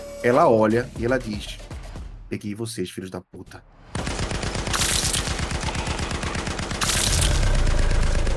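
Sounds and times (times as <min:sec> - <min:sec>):
speech: 0:00.2 - 0:01.6, 0:02.3 - 0:04.1
heavy machine gun firing: 0:04.0 - 0:08.3.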